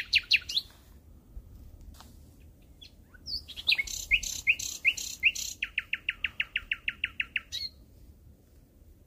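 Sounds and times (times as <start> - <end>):
common nightingale singing: 0.0 - 0.8, 2.4 - 7.8.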